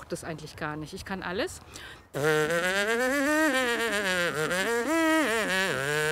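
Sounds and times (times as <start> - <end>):
speech: 0.1 - 5.0
lips buzzing a melody brass-player style: 2.2 - 6.0.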